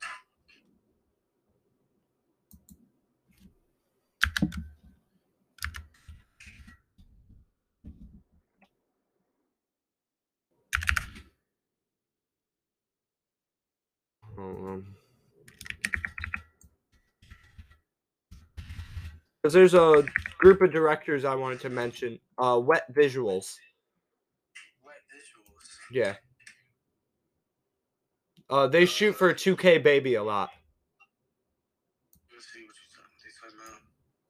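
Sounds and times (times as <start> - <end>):
computer keyboard typing: 4.2 - 4.7, 5.6 - 5.9, 10.7 - 11.2, 15.5 - 16.6, 19.9 - 20.6
speech: 19.4 - 23.7, 25.9 - 26.2, 28.5 - 30.6.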